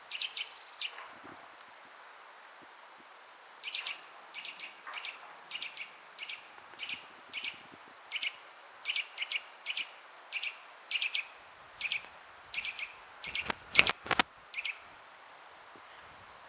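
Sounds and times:
Eurasian nuthatch Sitta europaea calling: 0.0s - 1.2s, 3.6s - 14.9s
loud clicks: 13.3s - 14.3s.

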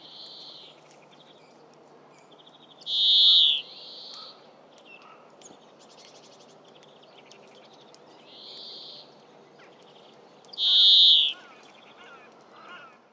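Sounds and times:
European greenfinch Chloris chloris calling with harsh nasal wheezes: 2.9s - 4.3s, 10.6s - 11.5s
European greenfinch Chloris chloris twittering trills: 10.6s - 11.4s.

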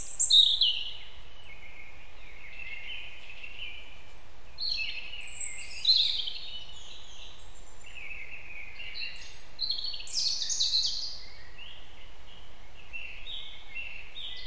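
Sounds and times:
European robin Erithacus rubecula song: 0.0s - 14.4s
low background hiss: 0.0s - 14.4s.

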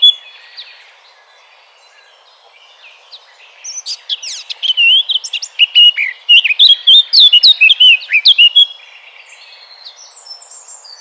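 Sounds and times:
Eurasian blackcap singing fluted whistles, Sylvia atricapilla: 0.0s - 0.3s, 3.5s - 8.8s.

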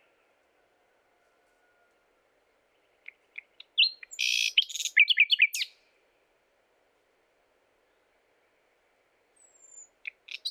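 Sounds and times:
common nightingale Luscinia megarhynchos song: 2.7s - 5.8s, 9.4s - 10.4s.

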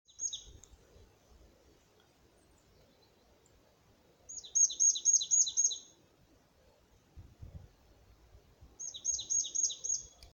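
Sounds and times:
marsh tit Poecile palustris chirping: 0.1s - 0.6s, 4.3s - 5.9s, 8.8s - 10.2s.

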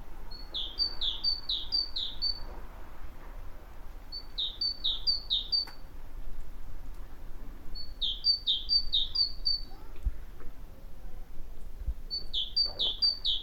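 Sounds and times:
great tit song: 0.3s - 2.5s, 4.1s - 5.9s, 7.8s - 9.8s, 12.1s - 13.4s.

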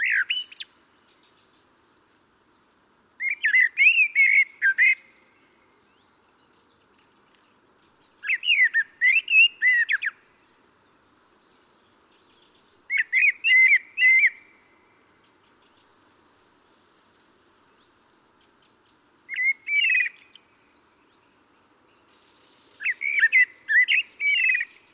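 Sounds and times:
common blackbird singing short whistled phrases with high thin squeaks: 0.0s - 0.7s, 3.2s - 5.2s, 8.2s - 10.2s, 12.9s - 14.5s, 19.3s - 20.4s, 22.8s - 24.9s.

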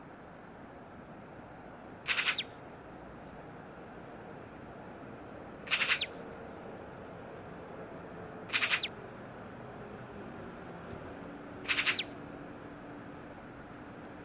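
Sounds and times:
steady low background hiss: 0.0s - 14.2s
Eurasian magpie Pica pica chattering rattles: 2.1s - 2.5s, 5.7s - 6.1s, 8.5s - 8.9s, 11.6s - 12.1s.

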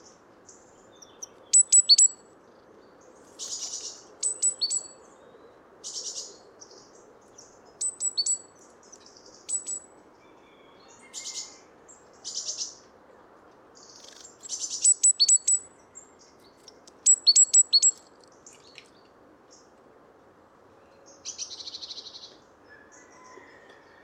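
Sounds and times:
faint low background noise: 0.0s - 24.0s
great tit Parus major calling with thin high clicking and chittering notes: 1.0s - 2.2s, 3.5s - 4.9s, 13.9s - 15.6s, 17.1s - 18.0s.

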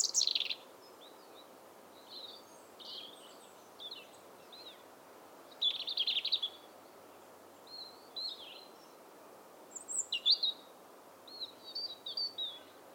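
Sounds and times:
European robin Erithacus rubecula singing: 0.0s - 4.9s, 5.5s - 6.7s, 7.6s - 9.0s, 9.7s - 10.7s, 11.3s - 12.8s
low background noise: 0.0s - 12.9s.

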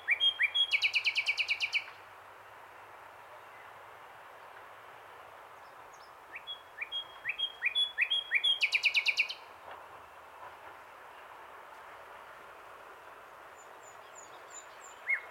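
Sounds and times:
common nightingale soft whistles: 0.0s - 1.9s, 6.3s - 9.4s.

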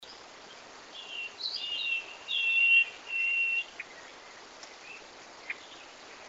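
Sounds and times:
common nightingale song phrase: 0.0s - 6.2s
faint ticks: 4.6s - 4.8s.

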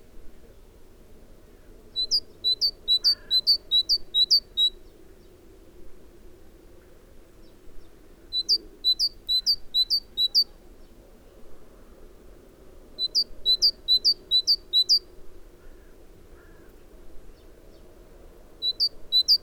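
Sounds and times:
low steady hum: 0.0s - 19.4s
Great tit Parus major singing two-note phrases: 2.0s - 4.8s, 8.3s - 10.5s, 13.0s - 15.0s, 18.6s - 19.4s.

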